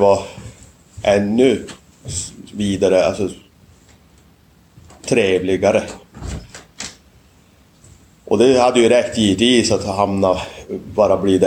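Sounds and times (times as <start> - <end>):
speech: 0.0 - 0.4, 1.0 - 3.4, 5.0 - 6.3, 8.3 - 11.4
door being pushed shut with a low thud-like scrape: 6.1 - 7.0.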